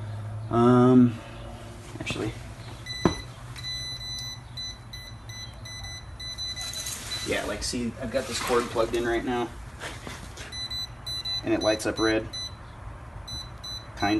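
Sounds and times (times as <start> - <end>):
speech: 0.5 - 1.3, 2.0 - 2.5, 7.3 - 10.0, 11.4 - 12.4, 14.0 - 14.1
voltage tester beeping: 2.8 - 7.4, 10.5 - 12.6, 13.3 - 14.1.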